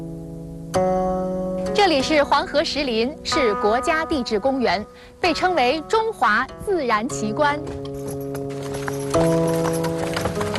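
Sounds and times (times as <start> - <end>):
speech: 1.7 - 7.9, 9.2 - 9.5
hooves of horse mule and donkey carts clip-clopping at walking pace: 7.4 - 10.5.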